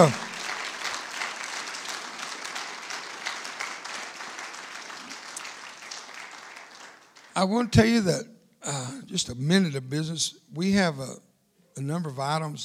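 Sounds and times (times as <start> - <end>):
speech: 0.0 - 0.2, 7.4 - 12.6
large group applauding: 0.0 - 7.6.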